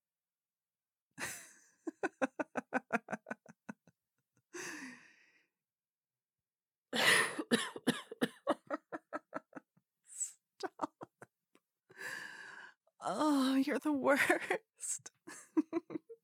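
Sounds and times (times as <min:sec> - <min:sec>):
woman laughing in quick breathy pulses: 0:01.2 - 0:03.8, 0:07.0 - 0:09.6, 0:10.2 - 0:11.3, 0:14.1 - 0:16.2
woman coughing: 0:07.0 - 0:08.8
speech: 0:13.8 - 0:15.2.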